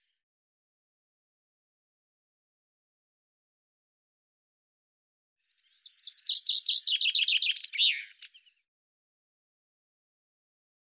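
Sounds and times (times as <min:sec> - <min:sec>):
common chaffinch singing a run of sweet descending notes: 0:05.8 - 0:08.6.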